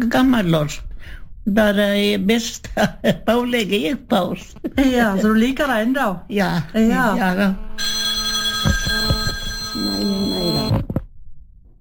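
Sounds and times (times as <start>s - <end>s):
speech: 0.0s - 8.0s
telephone ringing with a steady electronic tone: 7.8s - 10.9s
thumps: 8.5s - 9.8s.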